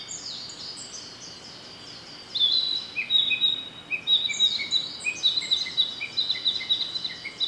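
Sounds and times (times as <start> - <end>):
Narcissus flycatcher singing: 2.3 - 7.4.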